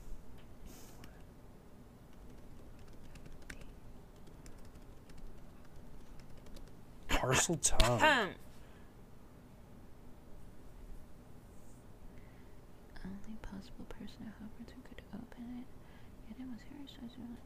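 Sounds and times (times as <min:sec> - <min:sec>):
rapid typing on a computer keyboard: 0:02.1 - 0:06.8
speech: 0:07.3 - 0:08.5, 0:16.6 - 0:17.4.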